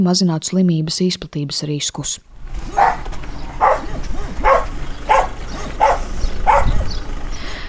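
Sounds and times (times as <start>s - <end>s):
speech: 0.0s - 3.1s
low rumble: 2.2s - 7.6s
dog barking: 2.6s - 7.0s.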